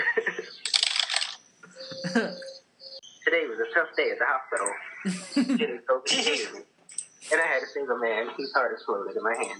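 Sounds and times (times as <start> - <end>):
laughter: 0.0 - 0.6, 2.0 - 2.4, 4.9 - 6.6
clacky typing on an old IBM mechanical keyboard: 0.7 - 1.4
speech: 2.0 - 2.4, 3.9 - 6.7, 7.3 - 9.5.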